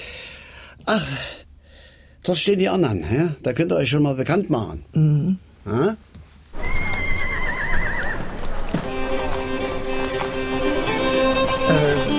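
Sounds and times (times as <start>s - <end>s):
speech: 0.8s - 1.4s, 2.2s - 6.2s
soft clip-clop of horse hooves outdoors: 6.5s - 12.1s
horses neighing and whinnying in a paddock: 6.6s - 12.1s.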